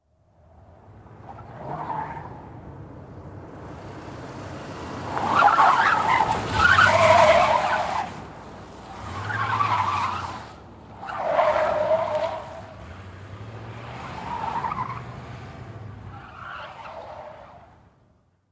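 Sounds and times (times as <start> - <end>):
car turning: 0.6 - 18.0.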